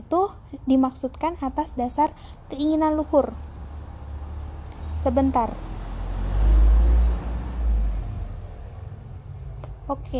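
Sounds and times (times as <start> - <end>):
speech: 0.1 - 3.5, 5.0 - 5.7, 9.9 - 10.1
heavy truck engine revving on road outside house: 3.5 - 9.5.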